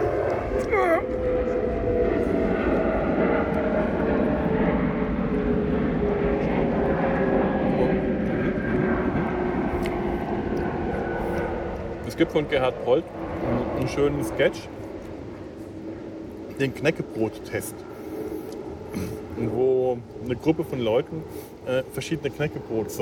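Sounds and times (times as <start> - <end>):
airplane roar flying overhead: 0.0 - 23.0
speech: 0.6 - 1.5, 12.2 - 14.8, 16.6 - 17.9, 18.9 - 23.0.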